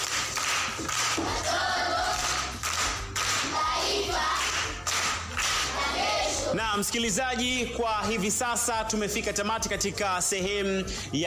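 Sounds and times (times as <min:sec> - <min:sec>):
applause for a young pupil: 0:00.0 - 0:03.6, 0:04.3 - 0:05.8
speech: 0:06.8 - 0:11.2.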